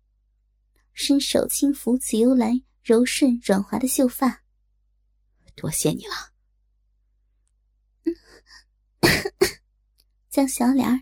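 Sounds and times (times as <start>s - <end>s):
speech: 1.0s - 4.4s, 5.6s - 6.3s, 10.4s - 11.0s
woman coughing softly, slightly hoarse: 9.0s - 9.7s.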